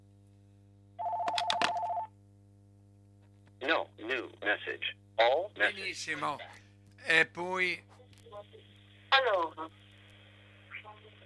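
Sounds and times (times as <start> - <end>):
telephone ringing with steady electronic tone and buzzy bell-like bursts: 1.0 - 2.1
speech: 3.7 - 9.8.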